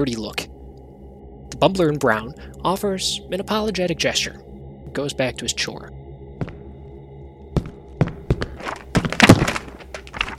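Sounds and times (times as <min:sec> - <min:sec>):
speech: 0:00.0 - 0:00.5, 0:01.5 - 0:06.0
books tumbling and scattering onto a library floor: 0:08.6 - 0:10.3.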